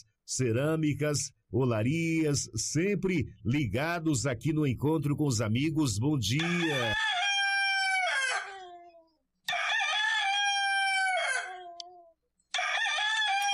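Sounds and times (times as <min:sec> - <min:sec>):
speech: 0:00.0 - 0:07.2
rooster crowing on a small farm: 0:06.4 - 0:08.8, 0:09.5 - 0:13.5.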